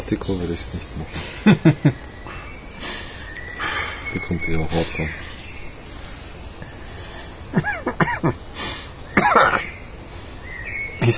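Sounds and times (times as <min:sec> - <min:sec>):
speech: 0:00.1 - 0:02.1, 0:04.1 - 0:05.2
laughter: 0:01.2 - 0:02.1, 0:07.5 - 0:08.4
person coughing after inhaling something: 0:07.6 - 0:08.3, 0:09.2 - 0:09.6.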